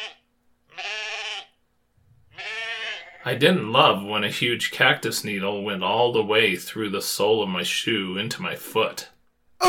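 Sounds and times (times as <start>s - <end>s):
bighorn sheep bleating on steep canyon cliffs: 0.0s - 1.6s, 2.3s - 3.3s
speech: 3.2s - 9.6s.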